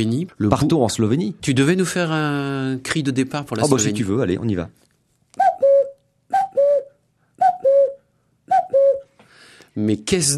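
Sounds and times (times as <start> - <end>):
speech: 0.0 - 4.8, 9.8 - 10.3
cuckoo calling in spring: 5.4 - 9.2.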